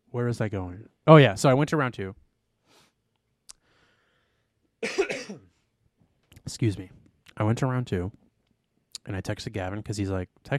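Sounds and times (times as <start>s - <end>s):
speech: 0.1s - 2.2s, 6.5s - 8.2s, 9.0s - 10.5s
harsh raspy throat clearing from a throat full of phlegm: 4.8s - 5.5s.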